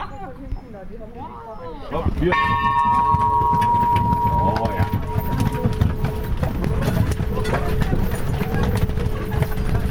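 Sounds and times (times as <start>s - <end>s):
voices: 0.0s - 9.8s
horse hooves clip-clopping in a farmyard on the bank of the Elbe: 1.9s - 9.8s
sustained ringing tone: 2.3s - 6.5s
horse-drawn carriage wheels rolling: 2.7s - 9.8s.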